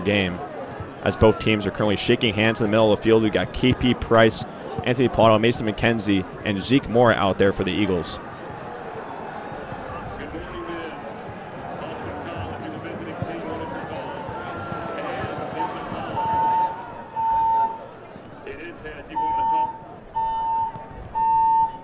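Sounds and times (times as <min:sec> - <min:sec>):
speech: 0:00.0 - 0:08.4
busy murmuring crowd: 0:00.0 - 0:21.8
alarm sounding electronic tones: 0:14.5 - 0:17.8, 0:19.0 - 0:21.8.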